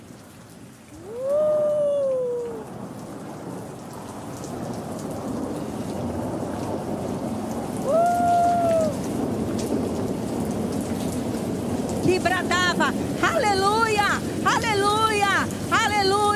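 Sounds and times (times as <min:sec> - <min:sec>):
heavy rain pouring: 0:00.0 - 0:16.3
deep rumbling thunder: 0:03.4 - 0:13.2.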